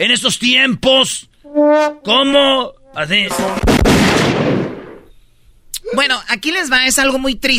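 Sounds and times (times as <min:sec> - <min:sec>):
speech: 0:00.0 - 0:04.5, 0:05.9 - 0:07.5
firing squad gunfire volley: 0:03.4 - 0:05.1.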